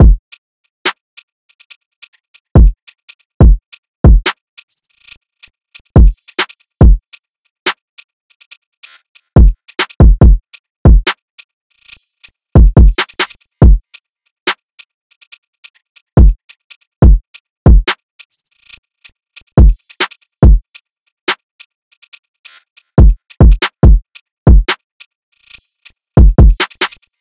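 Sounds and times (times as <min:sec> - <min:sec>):
staggered drum loop: 0:02.6 - 0:02.8, 0:03.4 - 0:04.3, 0:06.0 - 0:07.0, 0:09.4 - 0:11.1, 0:12.6 - 0:13.8, 0:17.0 - 0:18.0, 0:19.6 - 0:20.6, 0:23.0 - 0:24.8, 0:26.2 - 0:27.0.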